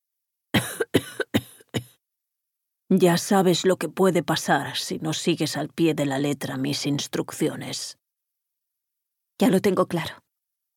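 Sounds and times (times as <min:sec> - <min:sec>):
person coughing fit on a phone call: 0:00.6 - 0:02.0
speech: 0:02.9 - 0:08.0, 0:09.4 - 0:10.2.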